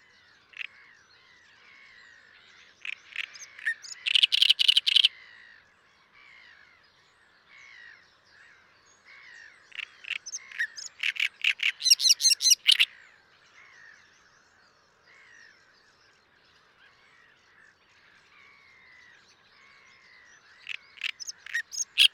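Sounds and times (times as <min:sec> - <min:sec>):
faint bird warbling: 0:03.1 - 0:05.1, 0:09.8 - 0:12.9, 0:20.7 - 0:22.1.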